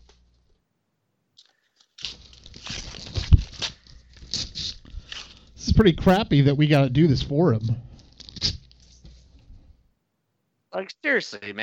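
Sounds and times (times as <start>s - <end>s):
junk mail paper being torn up by hand: 2.0s - 5.4s, 8.1s - 8.8s
speech: 5.8s - 7.8s, 11.0s - 11.6s.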